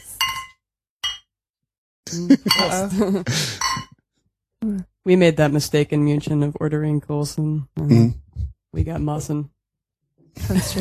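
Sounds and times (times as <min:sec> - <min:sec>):
beer glasses clinking in a toast: 0:00.0 - 0:01.3, 0:02.3 - 0:03.9
speech: 0:02.1 - 0:03.6, 0:04.8 - 0:09.6, 0:10.3 - 0:10.8.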